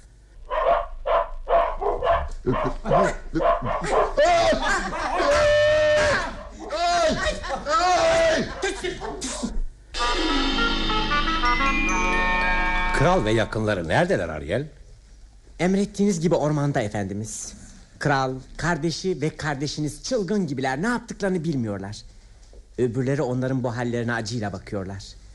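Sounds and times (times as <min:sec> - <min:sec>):
several dogs barking set loose upon a group of people: 0:00.5 - 0:05.3
speech: 0:02.4 - 0:05.6, 0:13.0 - 0:14.8, 0:15.6 - 0:22.2, 0:22.8 - 0:25.2
laughter: 0:02.5 - 0:09.6
sustained steady tone: 0:10.0 - 0:13.7.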